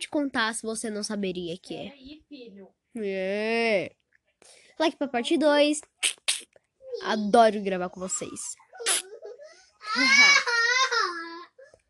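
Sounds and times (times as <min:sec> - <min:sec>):
speech: 0:00.1 - 0:06.2, 0:07.0 - 0:08.6, 0:09.9 - 0:10.6
young child crying with a high-pitched wail: 0:09.8 - 0:11.7.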